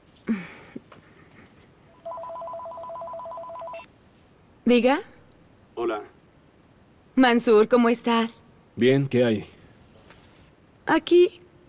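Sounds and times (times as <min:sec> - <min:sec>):
telephone ringing with an electronic warble: 0:02.0 - 0:03.9
speech: 0:04.7 - 0:05.1, 0:07.2 - 0:09.6, 0:10.9 - 0:11.4.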